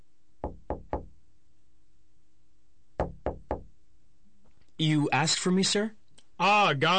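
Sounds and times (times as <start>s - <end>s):
faint steady hum: 0.0s - 6.9s
knocking on an office door: 0.4s - 1.2s, 3.0s - 3.7s
speech: 4.8s - 6.9s.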